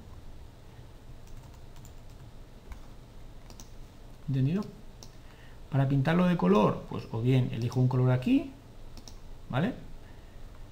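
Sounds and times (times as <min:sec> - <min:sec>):
low hum: 0:00.0 - 0:10.7
typing on a computer keyboard: 0:01.2 - 0:03.8, 0:09.0 - 0:09.2
speech: 0:04.3 - 0:04.8, 0:05.7 - 0:08.6, 0:09.5 - 0:09.8.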